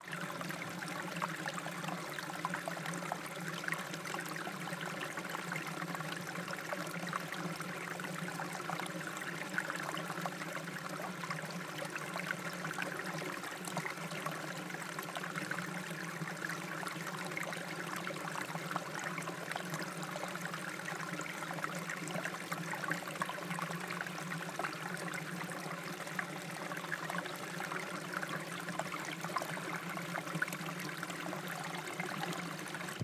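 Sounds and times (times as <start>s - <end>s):
small water rapids and small waterfall in the Cerrado: 0.0s - 33.0s.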